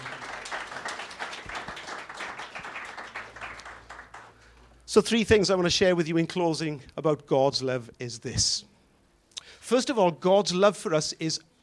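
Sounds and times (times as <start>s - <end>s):
crowd applauding: 0.0s - 4.5s
speech: 5.0s - 8.7s, 9.7s - 11.5s.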